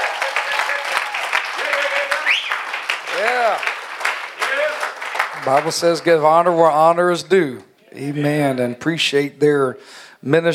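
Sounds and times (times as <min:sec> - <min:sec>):
cheers and whoops: 0:00.0 - 0:03.8
large church audience clapping: 0:00.0 - 0:06.6
speech: 0:05.4 - 0:10.5.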